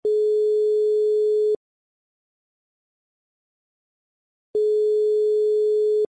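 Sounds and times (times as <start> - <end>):
telephone ringback tone in Cyprus: 0.0 - 1.6, 4.6 - 6.1.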